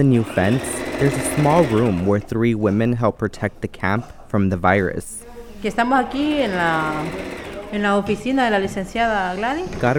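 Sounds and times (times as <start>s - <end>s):
sewing machine stitching face masks: 0.0s - 2.3s, 6.2s - 7.9s
speech: 0.0s - 9.9s.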